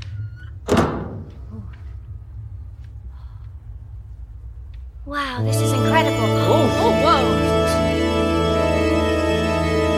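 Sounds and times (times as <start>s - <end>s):
low rumbling hum of a large indoor space: 0.0s - 9.9s
door being pushed open: 0.6s - 1.4s
speech: 5.0s - 7.5s.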